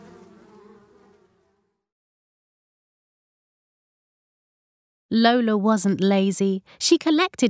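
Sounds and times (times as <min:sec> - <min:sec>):
bees buzzing: 0:00.0 - 0:01.8
speech: 0:05.1 - 0:07.4.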